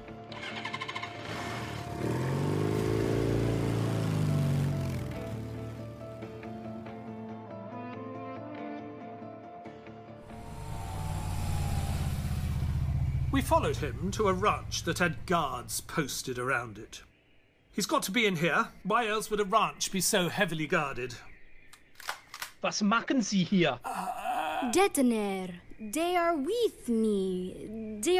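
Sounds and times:
motorcycle with a sidecar, engine revving: 0.3s - 6.4s, 10.3s - 16.2s
speech: 13.4s - 17.1s, 17.8s - 21.3s, 22.6s - 28.1s.

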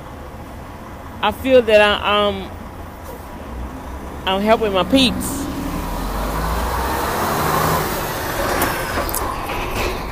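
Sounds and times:
general traffic noise on a busy road: 0.0s - 10.0s
speech: 1.2s - 2.6s, 4.2s - 5.4s
heavy truck rumbling past on a busy road: 2.5s - 10.0s.

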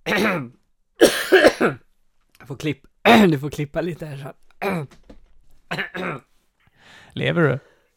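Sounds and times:
harsh choking coughs after a drink or food went down the wrong way: 0.0s - 1.8s, 4.6s - 5.0s, 5.7s - 6.3s
speech: 0.1s - 1.8s, 2.4s - 5.1s, 5.7s - 6.3s, 7.2s - 7.7s.

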